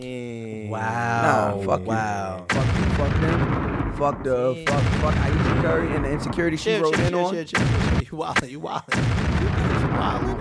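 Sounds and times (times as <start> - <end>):
speech: 0.0 - 10.4
gunshot sound effects: 2.5 - 10.4.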